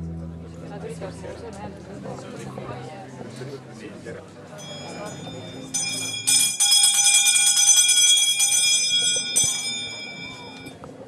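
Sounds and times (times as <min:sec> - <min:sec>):
harsh insistent electric bell ringing: 0:04.5 - 0:10.8.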